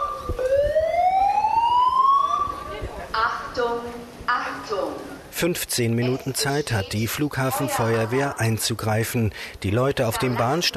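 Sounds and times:
smoke alarm wailing: 0.0s - 2.7s
speech: 0.3s - 0.5s, 3.6s - 10.7s.

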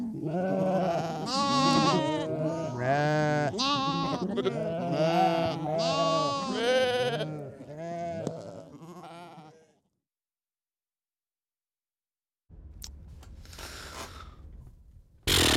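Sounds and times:
several sheep bleating: 0.0s - 9.9s.

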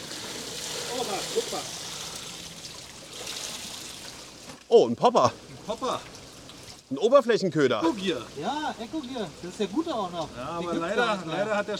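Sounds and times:
water trickling and draining as it is pressed out with feet: 0.0s - 7.1s, 7.7s - 11.7s
speech: 1.4s - 1.8s, 4.7s - 6.1s, 6.9s - 11.7s.

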